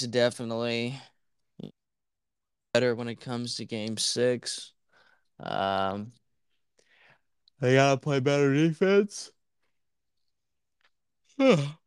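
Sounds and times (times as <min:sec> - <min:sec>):
speech: 0:00.0 - 0:01.7, 0:02.8 - 0:04.8, 0:05.4 - 0:06.2, 0:07.6 - 0:09.4, 0:11.4 - 0:11.8
single voiced yawn: 0:11.4 - 0:11.8.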